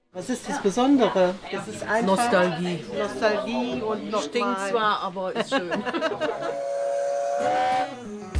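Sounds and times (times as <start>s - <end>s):
speech: 0.2s - 6.7s, 7.4s - 8.2s
laughter: 5.2s - 6.8s
steam locomotive whistle on a narrow-gauge German heritage railway: 6.3s - 8.3s.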